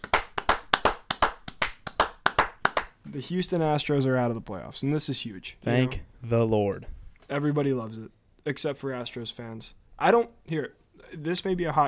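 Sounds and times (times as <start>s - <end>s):
rhythmic hand clapping: 0.0s - 3.0s
speech: 3.1s - 11.8s.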